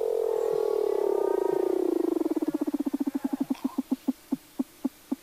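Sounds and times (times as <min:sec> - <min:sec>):
Weddell seal calling underwater in Antarctica: 0:00.1 - 0:05.2
Weddell seal pulsed clicks: 0:01.7 - 0:05.2.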